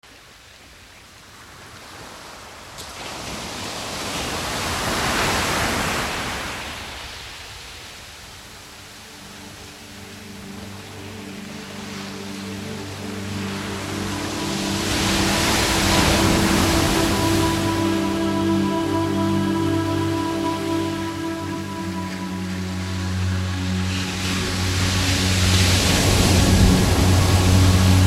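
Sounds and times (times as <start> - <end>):
ocean waves: 0.1 - 28.0.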